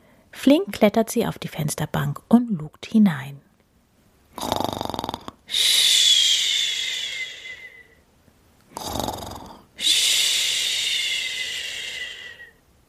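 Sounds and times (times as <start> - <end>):
speech: 0.4 - 3.4, 4.4 - 4.8, 5.5 - 5.8
sleeping boy snoring: 4.4 - 7.8, 8.7 - 12.5.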